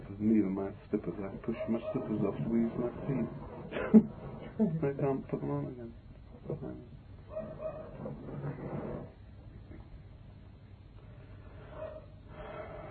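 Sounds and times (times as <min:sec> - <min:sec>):
speech: 0:00.2 - 0:07.0
dog barking intensely: 0:01.5 - 0:02.3, 0:07.3 - 0:08.0, 0:11.7 - 0:12.1.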